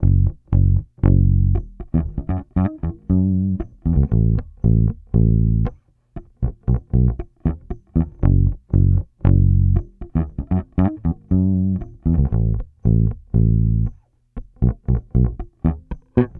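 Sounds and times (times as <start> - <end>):
electric bass loop at 117 BPM in G minor: 0.0 - 16.3.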